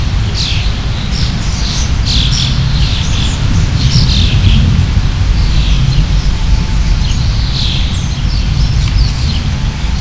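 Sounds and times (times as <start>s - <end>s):
ambience: 0.0s - 9.9s.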